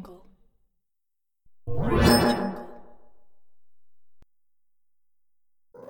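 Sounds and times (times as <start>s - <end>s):
game vanish disappear sound effect: 1.5s - 5.3s.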